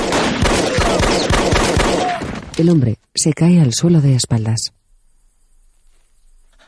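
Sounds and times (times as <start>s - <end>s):
rapid gunfire: 0.0s - 2.4s
speech: 2.6s - 4.8s.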